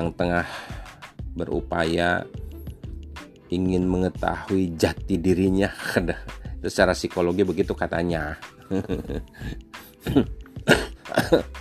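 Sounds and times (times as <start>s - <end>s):
speech: 0.0s - 0.8s, 1.4s - 2.4s, 3.5s - 11.5s
laughter: 8.7s - 9.3s
person coughing: 10.0s - 11.5s.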